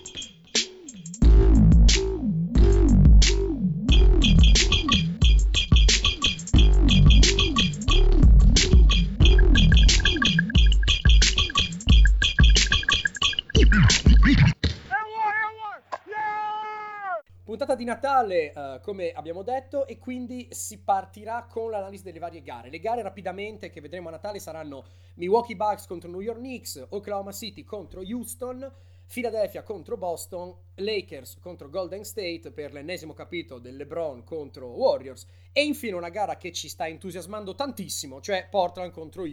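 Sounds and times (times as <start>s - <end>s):
podcast intro jingle music: 0.9s - 14.4s
speech: 17.9s - 39.3s.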